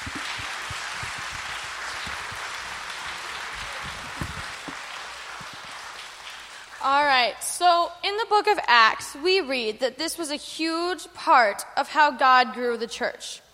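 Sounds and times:
crowd applauding: 0:00.0 - 0:06.8
speech: 0:06.8 - 0:13.4.

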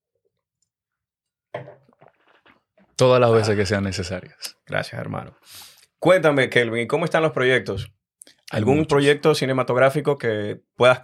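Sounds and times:
person taking a deep gulp of wine: 0:01.8 - 0:02.9
speech: 0:03.0 - 0:11.0.

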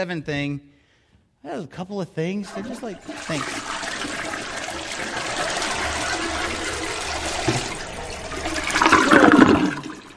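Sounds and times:
speech: 0:00.0 - 0:00.7, 0:01.4 - 0:03.8
toilet flushing: 0:02.4 - 0:10.1.

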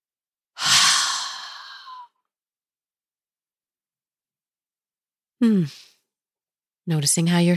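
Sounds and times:
deep cleansing breath during a grounding relaxation exercise, open-mouthed exhale: 0:00.6 - 0:02.1
speech: 0:05.4 - 0:05.9, 0:06.9 - 0:07.5.

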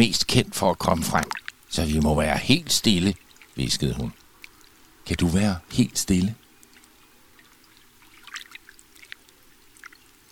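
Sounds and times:
speech: 0:00.0 - 0:04.2, 0:05.1 - 0:06.4
waves lapping against a lake shore: 0:00.6 - 0:10.3.

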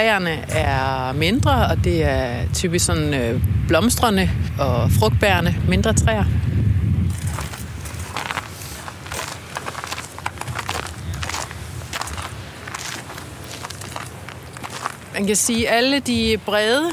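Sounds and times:
speech: 0:00.0 - 0:06.6, 0:15.2 - 0:16.9
brief low rumble: 0:00.0 - 0:15.0
footsteps climbing outdoor stairs into an English garden in a park: 0:07.2 - 0:15.1.

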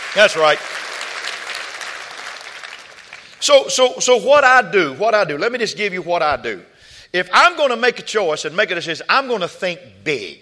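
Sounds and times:
audience clapping at a church service: 0:00.0 - 0:03.4
speech: 0:00.1 - 0:00.9, 0:03.4 - 0:10.4.

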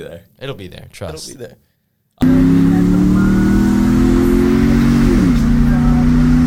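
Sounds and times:
speech: 0:00.0 - 0:03.2
car engine droning: 0:02.2 - 0:06.4.

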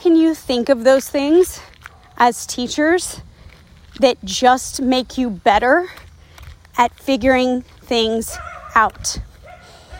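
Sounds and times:
speech: 0:00.0 - 0:03.3, 0:03.9 - 0:06.0, 0:06.8 - 0:09.3
dog barking with yips and whimpering outdoors: 0:08.3 - 0:08.8, 0:09.4 - 0:09.9.

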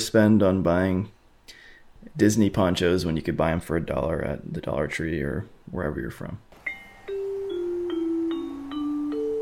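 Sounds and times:
speech: 0:00.0 - 0:01.2, 0:02.0 - 0:06.5
bright electronic ding-dong chime melody: 0:06.6 - 0:09.3.

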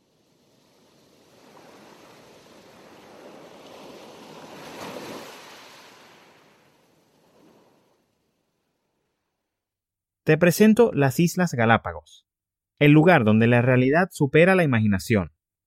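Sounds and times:
waves crashing on rocks and sand along a shoreline: 0:00.0 - 0:09.3
speech: 0:10.3 - 0:15.4.

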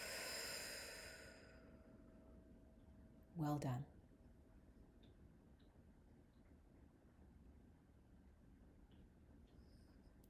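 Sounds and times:
deep breath in and exhale: 0:00.0 - 0:01.8
speech: 0:03.4 - 0:04.0.

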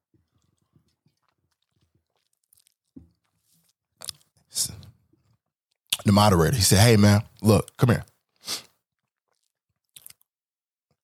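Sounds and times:
mouth sounds: 0:05.9 - 0:08.7
speech: 0:06.1 - 0:08.6.

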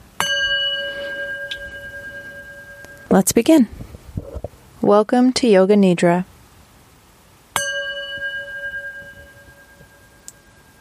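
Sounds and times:
singing bowl struck to open a meditation session: 0:00.2 - 0:03.4, 0:07.5 - 0:10.7
speech: 0:03.1 - 0:03.8, 0:04.9 - 0:06.3.

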